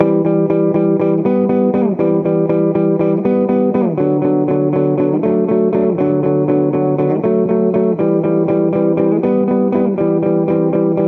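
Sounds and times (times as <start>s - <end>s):
electric guitar loops: 0.0s - 11.0s.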